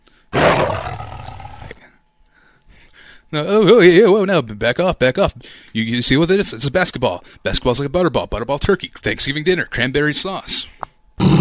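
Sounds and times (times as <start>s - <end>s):
big cat roaring: 0.3s - 1.8s, 11.2s - 11.4s
speech: 3.3s - 11.4s.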